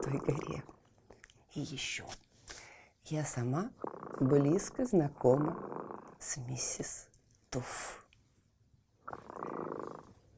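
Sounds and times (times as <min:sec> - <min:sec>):
cat purring: 0:00.0 - 0:00.9, 0:03.4 - 0:07.1, 0:09.0 - 0:10.3
speech: 0:00.1 - 0:00.8, 0:01.5 - 0:02.3, 0:03.1 - 0:08.0.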